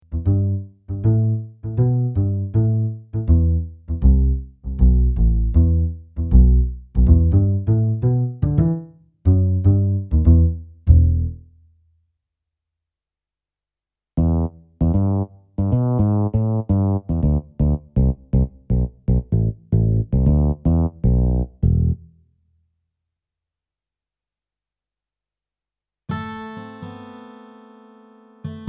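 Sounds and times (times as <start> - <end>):
CS6 bass guitar: 0.0 - 11.6, 14.2 - 22.1.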